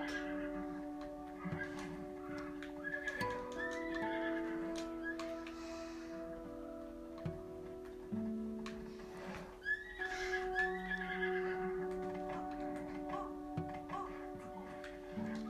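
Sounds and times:
horse whinnying: 0:00.0 - 0:05.3, 0:09.3 - 0:14.8
faint rhythmic ticking: 0:00.0 - 0:15.4
sustained musical tones: 0:00.0 - 0:15.4.

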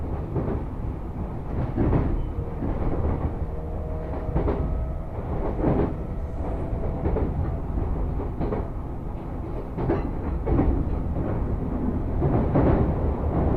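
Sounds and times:
moving train rumble: 0:00.0 - 0:13.5.

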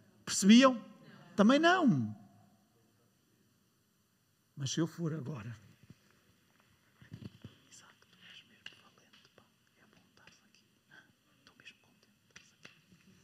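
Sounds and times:
speech: 0:00.4 - 0:02.2, 0:04.6 - 0:05.6
soft breathy whispering: 0:06.9 - 0:13.2.

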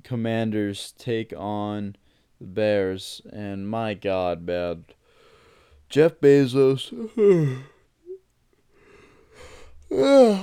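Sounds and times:
speech: 0:00.0 - 0:05.0, 0:05.9 - 0:07.7, 0:09.9 - 0:10.4
tired person yawning late at night: 0:06.9 - 0:08.2, 0:09.4 - 0:10.4.

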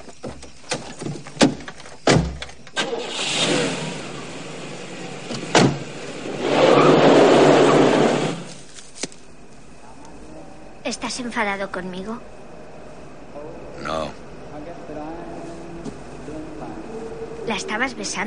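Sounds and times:
car engine accelerating away from a bar: 0:02.8 - 0:08.5
car door thumps and clicks: 0:05.3 - 0:05.9
speech: 0:11.0 - 0:12.4, 0:17.6 - 0:18.2.

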